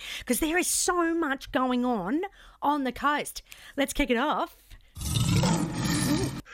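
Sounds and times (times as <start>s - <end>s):
speech: 0.2s - 4.6s
loud rough lion roar sound effect: 5.0s - 6.4s.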